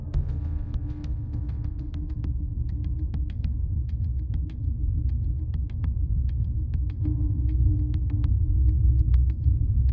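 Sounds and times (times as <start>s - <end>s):
suspense music: 0.0s - 9.9s.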